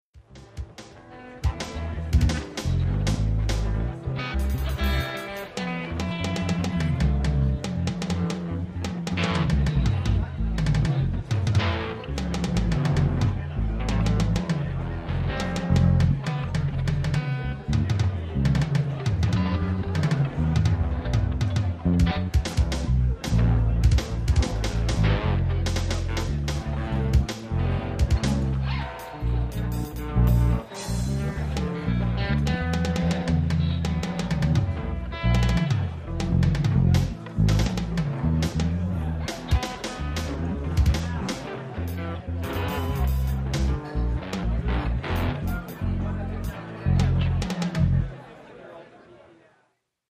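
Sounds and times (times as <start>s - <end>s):
rock band tuning up: 0.2s - 48.1s
crowd: 0.2s - 50.0s.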